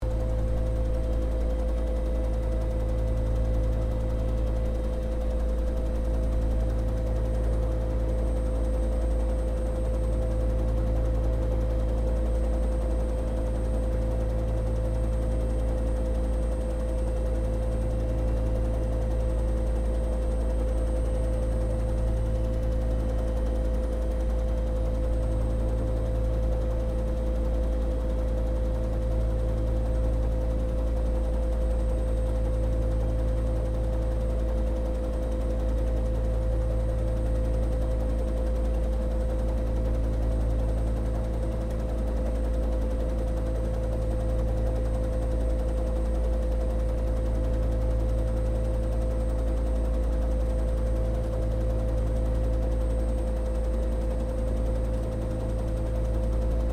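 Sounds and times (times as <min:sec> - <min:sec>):
Bell UH-1 Iroquois helicopter idling heard from the interior: 0:00.0 - 0:56.7.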